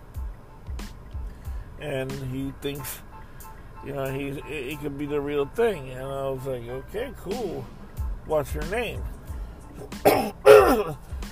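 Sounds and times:
speech: 1.8s - 3.1s, 3.8s - 9.2s, 9.8s - 11.1s
harsh coughs into the microphone: 9.8s - 11.0s.

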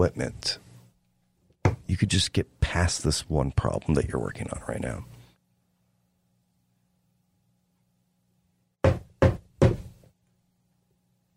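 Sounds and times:
speech: 0.0s - 0.6s, 1.9s - 5.2s
knocking on a door: 1.6s - 1.8s, 8.8s - 10.0s.

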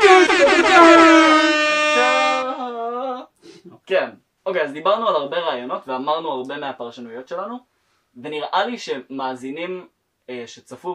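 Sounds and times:
trap-style air horn blast sound effect: 0.0s - 2.6s
speech: 3.9s - 10.9s.

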